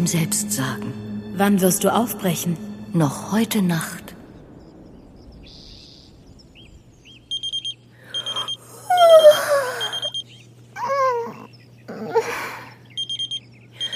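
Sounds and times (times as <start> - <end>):
speech: 0.0 - 4.0
electronic alarm clock beeping: 7.3 - 8.6, 9.2 - 10.3, 13.0 - 13.9
whining whimpering cries: 8.2 - 12.8.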